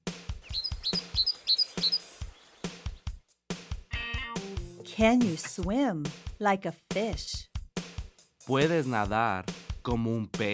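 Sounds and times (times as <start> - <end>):
small bird chirping in high tweets: 0.4 - 3.1
speech: 5.0 - 7.5, 8.5 - 10.5.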